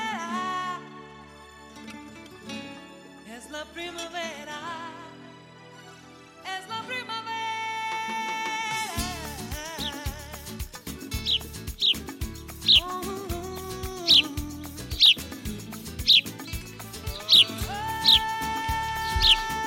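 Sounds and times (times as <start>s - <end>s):
soft steady music with low tones: 0.0s - 19.6s
speech: 3.6s - 4.6s
birds chirping: 9.8s - 10.0s, 11.0s - 19.6s.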